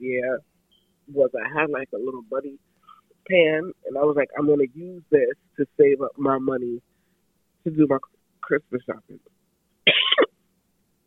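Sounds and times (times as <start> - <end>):
speech: 0.2 - 6.9, 7.6 - 10.2
person coughing: 9.9 - 10.3.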